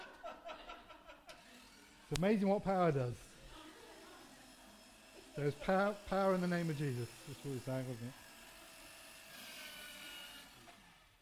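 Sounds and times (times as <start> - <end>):
laughter: 0.0 - 1.5, 3.5 - 4.4
paper shredder running: 1.3 - 11.1
speech: 2.1 - 3.3, 5.4 - 8.2.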